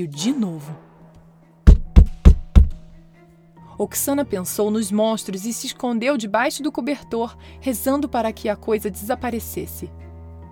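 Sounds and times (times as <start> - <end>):
speech: 0.0 - 0.9, 3.8 - 10.0
knocking on a wooden door: 1.7 - 3.0.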